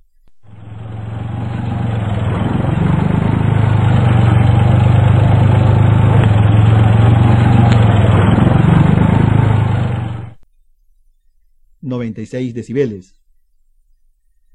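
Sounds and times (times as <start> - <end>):
tractor heavy diesel engine running: 0.3 - 10.4
speech: 12.1 - 13.2.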